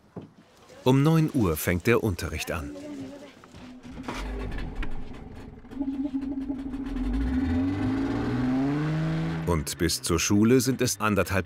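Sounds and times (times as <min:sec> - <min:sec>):
speech: 0:00.8 - 0:02.9, 0:09.5 - 0:11.4
boat motor engine revving while stuck aground on a lake: 0:03.7 - 0:10.0.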